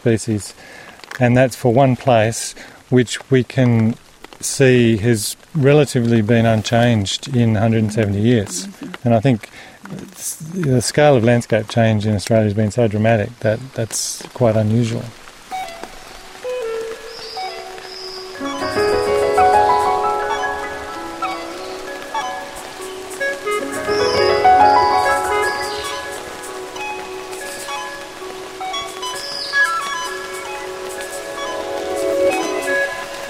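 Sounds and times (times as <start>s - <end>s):
speech: 0.0s - 15.2s
rain pattering through a forest on Mount Royal slopes in the Hunter Valley Australia: 0.0s - 33.2s
birds calling: 16.4s - 33.2s.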